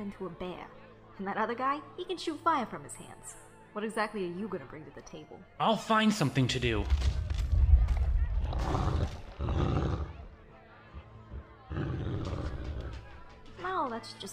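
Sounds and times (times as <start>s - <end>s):
speech: 0.0s - 7.2s, 13.8s - 14.3s
snarling beast roar: 8.4s - 10.3s, 11.7s - 13.0s.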